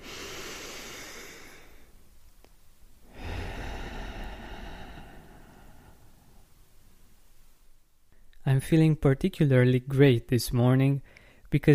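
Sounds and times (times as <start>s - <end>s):
deep breath in and out: 0.0s - 2.0s, 3.0s - 6.8s, 11.0s - 11.5s
speech: 8.6s - 11.7s.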